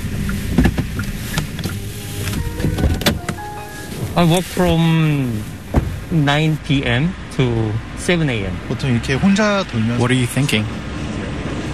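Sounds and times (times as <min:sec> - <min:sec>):
delivery truck engine rumble heard from the passenger seat: 0:00.0 - 0:08.7
speech: 0:04.2 - 0:10.9.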